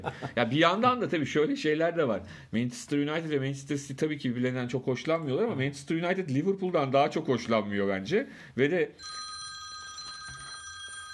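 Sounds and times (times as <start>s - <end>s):
laughter: 0.0s - 0.5s
speech: 0.0s - 9.2s
telephone ringing with an electronic trill as a listener's call comes in: 9.0s - 11.1s.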